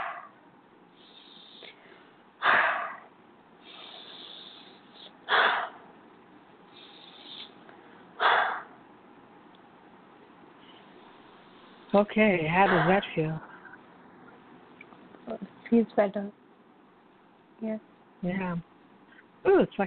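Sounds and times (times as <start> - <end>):
quiet hiss: 0.0 - 19.8
person taking slow deep breaths: 1.0 - 3.0, 3.6 - 5.8, 6.7 - 8.7
speech: 11.9 - 13.5, 15.8 - 16.4, 17.6 - 18.7, 19.6 - 19.8.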